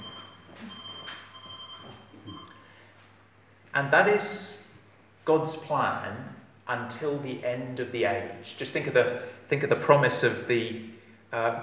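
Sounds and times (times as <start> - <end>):
thin high electronic beep during a church sermon: 0.0 - 2.6
speech: 3.8 - 4.6, 5.3 - 11.6.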